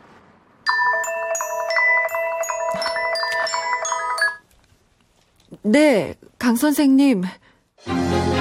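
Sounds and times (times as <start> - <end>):
melodic electronic phone ringtone: 0.7 - 4.4
speech: 5.6 - 8.3.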